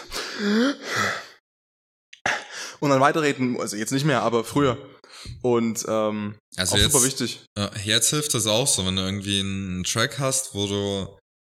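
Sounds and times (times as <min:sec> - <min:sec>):
person sharply gasping an imitated breath mid-sentence: 0:00.0 - 0:01.4, 0:02.2 - 0:02.8
speech: 0:00.4 - 0:01.2, 0:02.8 - 0:11.2
short voiced sounds: 0:06.6 - 0:07.2.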